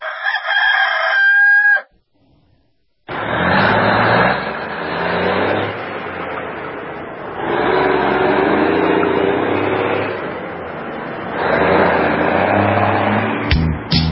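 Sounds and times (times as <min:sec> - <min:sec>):
rooster crowing: 0:00.0 - 0:02.0
vehicle engine roaring and rumbling: 0:03.1 - 0:14.1.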